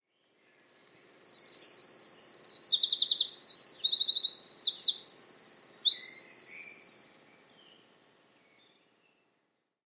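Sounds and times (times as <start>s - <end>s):
bird singing buzzy trills: 1.0s - 7.8s.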